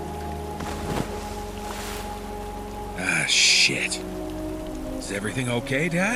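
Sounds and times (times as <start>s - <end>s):
faint water slosh: 0.3s - 3.0s
object falling overboard splashing into water: 0.6s - 2.4s
speech: 3.2s - 4.2s, 5.1s - 6.1s.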